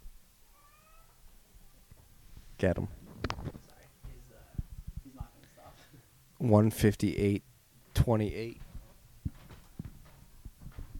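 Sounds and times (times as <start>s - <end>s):
cat meowing: 0.5s - 1.2s
speech: 2.6s - 3.0s, 6.4s - 8.6s.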